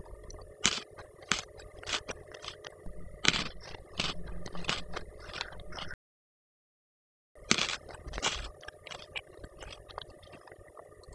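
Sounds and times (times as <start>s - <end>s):
candy crunching: 0.6s - 6.0s, 7.4s - 10.6s.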